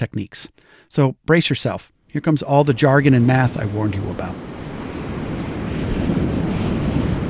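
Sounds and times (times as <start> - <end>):
speech: 0.0 - 4.5
faint windy hiss: 0.6 - 7.2
ocean waves hitting the shore: 1.5 - 7.2.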